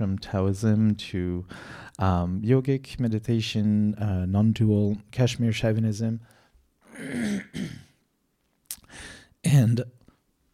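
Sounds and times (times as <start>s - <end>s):
speech: 0.0s - 6.4s, 7.0s - 7.8s, 9.4s - 10.0s
throat clearing: 6.9s - 8.0s.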